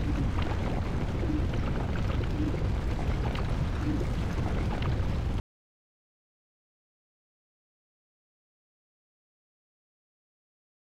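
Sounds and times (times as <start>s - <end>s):
volcano ambience: 0.0s - 5.4s.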